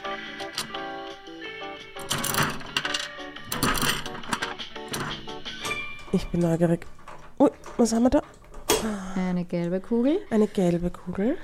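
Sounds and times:
coin clinking into a two-sided gumball machine: 0:02.0 - 0:06.7
speech: 0:06.1 - 0:11.4.

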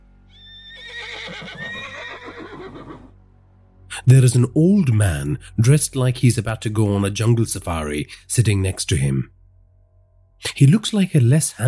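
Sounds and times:
horse whinnying in a long shrill quavering call: 0:00.3 - 0:03.2
speech: 0:04.1 - 0:09.4, 0:10.4 - 0:11.6.

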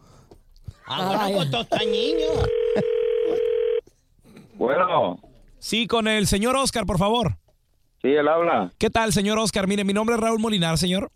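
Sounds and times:
speech: 0:00.9 - 0:03.0, 0:04.6 - 0:07.4, 0:08.0 - 0:11.1
telephone ringing tone while a call is placed: 0:01.8 - 0:03.8.

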